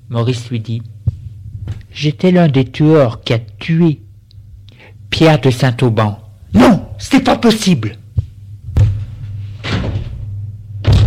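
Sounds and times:
low steady hum: 0.0 - 11.0
speech: 0.1 - 1.0, 2.0 - 4.0, 5.1 - 8.0
loud thud: 8.7 - 11.0
door slamming shut: 9.6 - 11.0.

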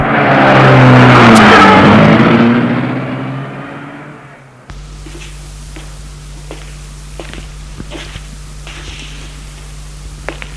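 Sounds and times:
car pulling away and driving off: 0.0 - 5.3
car engine starting and revving in front of a residence entrance: 0.0 - 6.4.

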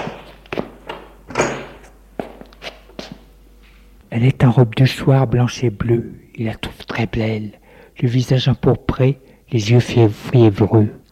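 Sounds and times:
door clunking and rattling as it swings open: 0.0 - 1.9
lighter thuds like footsteps: 0.0 - 3.9
speech: 4.2 - 11.0.

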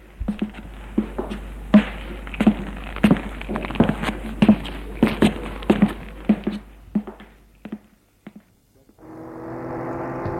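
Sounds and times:
steady engine-like rumble: 0.0 - 7.5, 9.0 - 10.3
footsteps thudding down a staircase: 0.0 - 9.0
low hum: 0.0 - 9.4.

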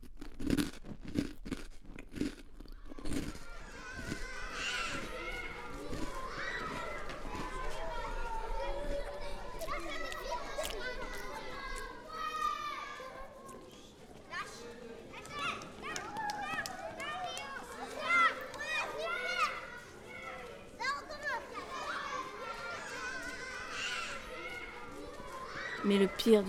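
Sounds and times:
someone crunching rusks at breakfast: 0.0 - 7.8, 9.5 - 12.0
children shouting and laughing in a school playground: 2.7 - 26.4
speech: 25.9 - 26.4.

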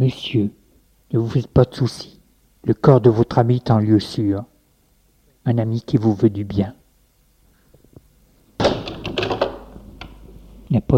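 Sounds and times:
speech: 0.0 - 4.5, 5.4 - 6.8, 10.7 - 10.9
door opening with a sudden loud thunk: 8.6 - 10.2
rattling and clattering: 8.6 - 10.3.

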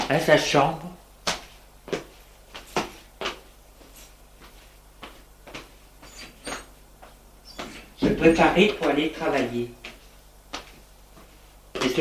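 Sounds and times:
low steady hum: 0.0 - 12.0
speech: 0.1 - 0.9, 8.2 - 9.8
wooden door thuds and clunks while pulled shut: 8.0 - 8.5.

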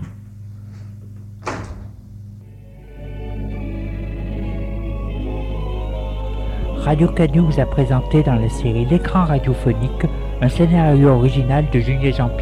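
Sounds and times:
door creaking: 0.0 - 2.2
low rumble and hum: 0.0 - 12.4
speech: 6.8 - 12.4.

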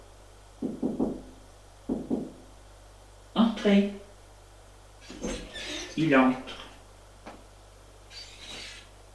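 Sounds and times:
knocking on a bedroom door: 0.6 - 2.4
speech: 3.6 - 4.0, 6.0 - 6.6.

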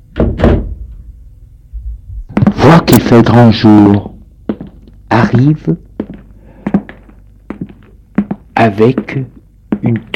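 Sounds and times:
door opening with wooden clunks: 0.2 - 0.8
speech: 2.6 - 4.1, 5.2 - 5.8, 8.6 - 10.1.

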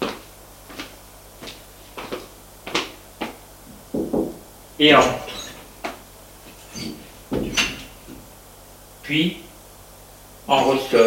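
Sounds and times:
low hum: 0.0 - 11.0
police officer knocking on an office door at a police station: 3.9 - 4.4, 7.3 - 8.2
speech: 4.8 - 5.3, 9.1 - 9.5, 10.5 - 11.0.

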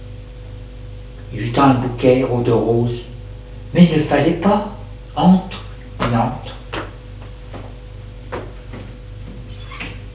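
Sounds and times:
steady low hum: 0.0 - 10.1
speech: 1.3 - 3.1, 3.7 - 6.6
door closing with soft clunks and handling knocks: 9.3 - 10.1.

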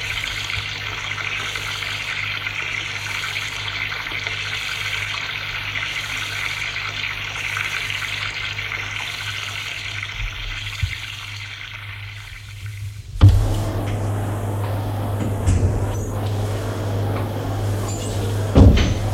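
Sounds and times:
shower water running from overhead jet: 0.0 - 19.1
low hum: 13.1 - 19.1.

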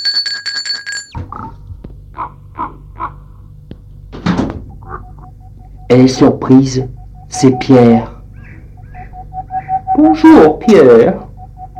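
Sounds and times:
doorbell ringing at a gate: 0.0 - 1.2
harsh crow-like caws: 2.2 - 3.3
dull thump: 4.1 - 4.7
speech: 5.9 - 8.1, 10.0 - 11.3.

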